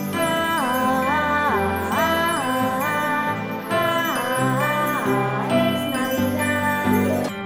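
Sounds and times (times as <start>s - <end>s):
child singer singing a Christmas song: 0.1s - 7.3s.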